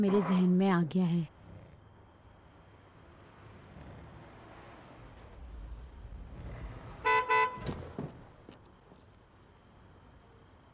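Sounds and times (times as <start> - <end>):
speech: 0.0 - 1.4
low rumble of street traffic: 0.0 - 10.7
car horn honking: 7.0 - 7.7.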